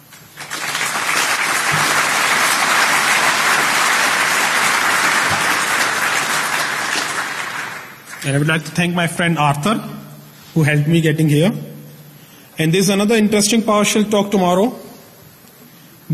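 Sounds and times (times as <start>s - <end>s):
crowd applauding at the end of a PowerShell talk: 0.0s - 8.5s
speech: 8.2s - 10.0s, 10.6s - 11.7s, 12.6s - 14.9s.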